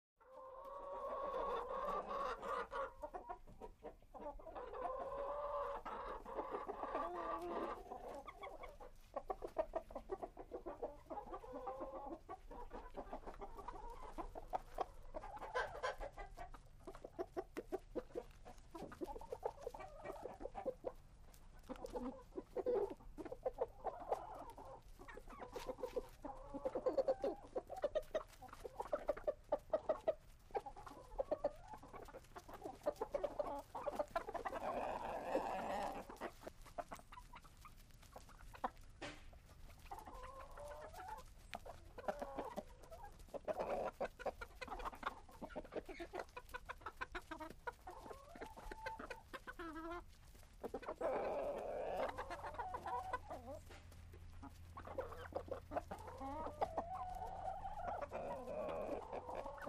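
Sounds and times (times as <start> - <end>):
several chickens: 0.2 - 59.6.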